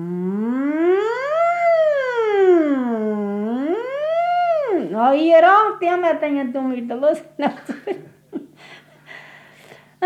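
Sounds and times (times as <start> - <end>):
siren wailing: 0.0 - 5.3
speech: 5.2 - 8.8.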